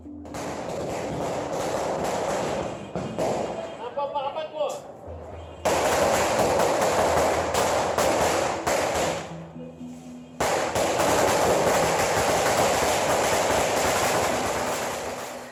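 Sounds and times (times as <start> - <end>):
fireworks and firecrackers exploding: 0.3 - 3.9, 5.6 - 9.3, 10.4 - 15.5.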